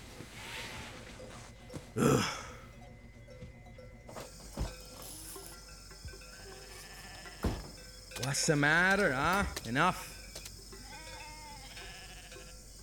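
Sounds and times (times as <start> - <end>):
speech: 2.0 - 2.4, 8.3 - 10.1
goat bleating: 6.5 - 7.6, 10.8 - 12.6.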